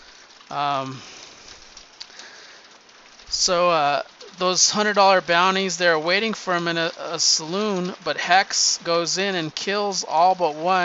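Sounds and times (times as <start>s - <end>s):
heavy hail falling: 0.0s - 10.8s
speech: 0.5s - 1.3s, 3.3s - 10.8s.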